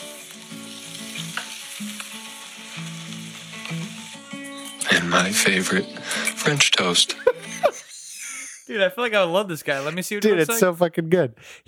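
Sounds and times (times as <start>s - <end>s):
eggs and bacon frying for breakfast: 0.0s - 8.6s
speech: 4.9s - 7.8s, 8.7s - 11.6s
laughter: 5.4s - 8.7s, 9.7s - 10.7s.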